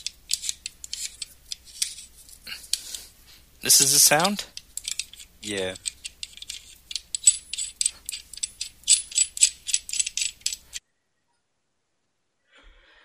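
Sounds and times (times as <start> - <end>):
ratcheting clicks of a microphone being tightened: 0.0 - 2.1, 3.9 - 10.8
speech: 3.6 - 4.6, 5.4 - 5.9.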